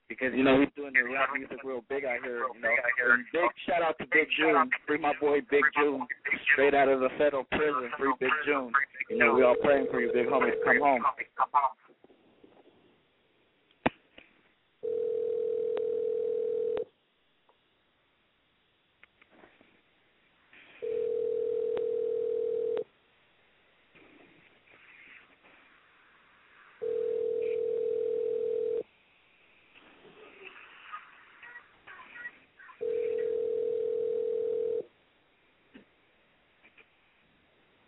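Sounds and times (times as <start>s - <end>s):
faint noise: 0.0s - 37.8s
speech: 0.1s - 11.8s
telephone tone from an unanswered call: 9.1s - 11.0s, 14.8s - 16.9s, 20.8s - 22.9s, 26.8s - 28.8s, 32.8s - 34.9s.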